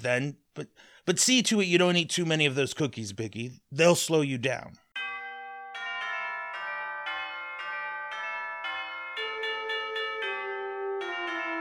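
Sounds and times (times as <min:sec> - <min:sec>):
speech: 0:00.0 - 0:04.8
elaborate doorbell chime melody: 0:05.0 - 0:11.5.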